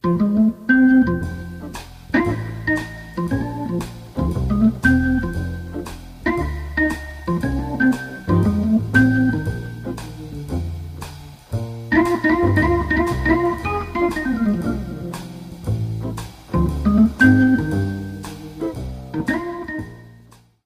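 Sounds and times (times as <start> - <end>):
Hammond organ: 0.0 - 20.4.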